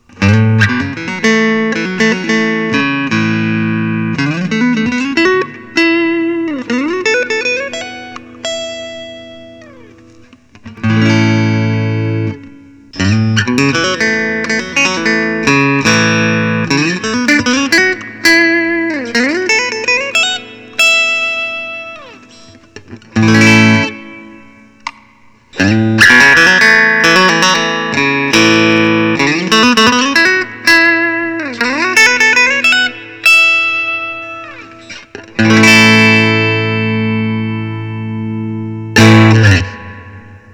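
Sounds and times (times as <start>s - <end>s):
Fender Telecaster electric guitar: 0.0s - 40.5s.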